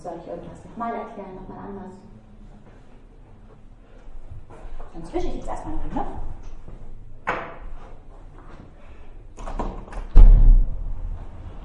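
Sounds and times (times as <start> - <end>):
faint room noise: 0.0 - 11.6
speech: 0.1 - 2.2, 4.5 - 6.3
door or window thudding shut: 10.1 - 10.9.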